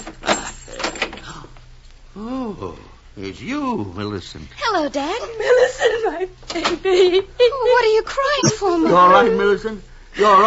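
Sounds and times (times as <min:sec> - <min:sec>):
metallic clicks and rattles of a door being unlocked: 0:00.0 - 0:01.3
speech: 0:02.2 - 0:10.4
laughter: 0:05.2 - 0:09.6.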